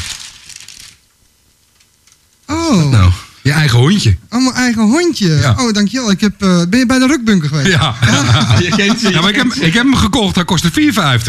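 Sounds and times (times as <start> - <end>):
wrapping paper rustling and tearing as a wrapped present is opened: 0.0 - 1.1
speech: 2.7 - 11.2
laughter: 7.4 - 10.1.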